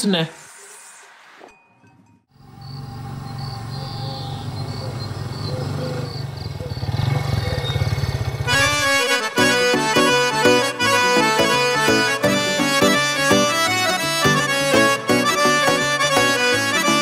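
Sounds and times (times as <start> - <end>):
speech: 0.0 - 0.4
motorcycle engine idling and revving: 2.4 - 8.8
rhythmic music: 8.7 - 16.9.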